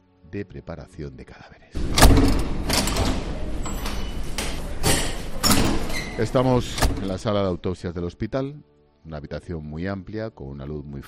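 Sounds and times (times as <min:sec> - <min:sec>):
speech: 0:00.3 - 0:03.2, 0:06.2 - 0:11.0
key unlocking a hospital door: 0:01.8 - 0:07.6
scraping and clunking: 0:01.8 - 0:07.6.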